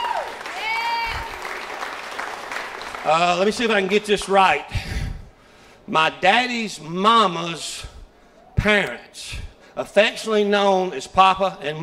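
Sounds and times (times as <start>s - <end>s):
high cheer: 0.0s - 3.9s
audience applauding: 0.0s - 4.4s
speech: 3.0s - 4.9s, 5.9s - 7.9s, 8.6s - 11.8s.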